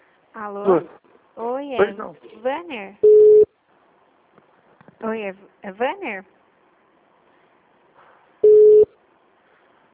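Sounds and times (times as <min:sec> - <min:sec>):
speech: 0:00.4 - 0:03.1, 0:05.0 - 0:06.4
telephone call ringing tone beep: 0:03.0 - 0:03.5, 0:08.4 - 0:08.9.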